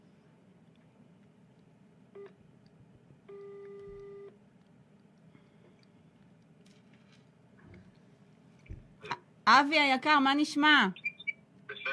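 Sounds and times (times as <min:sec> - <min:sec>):
quiet hum: 0:00.0 - 0:11.9
soft clicks: 0:00.7 - 0:06.5
mobile phone dialing tones on speakerphone: 0:03.3 - 0:04.4
speech: 0:09.5 - 0:11.0.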